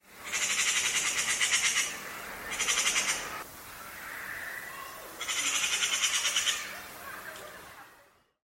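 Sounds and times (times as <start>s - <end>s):
buzzy rattling bird calls: 0.2s - 7.8s.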